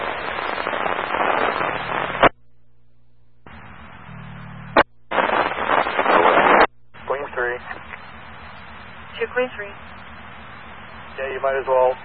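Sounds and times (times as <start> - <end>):
fireworks crackling and popping at the scene of an accident over a scratchy radio channel: 0.0 - 2.3, 4.7 - 8.1
speech: 9.4 - 10.0, 11.4 - 12.0.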